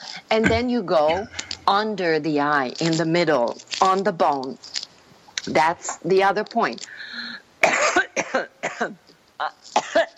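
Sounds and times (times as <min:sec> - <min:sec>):
speech: 0:00.3 - 0:04.8, 0:05.4 - 0:07.1, 0:08.3 - 0:10.1
person coughing: 0:07.6 - 0:09.0.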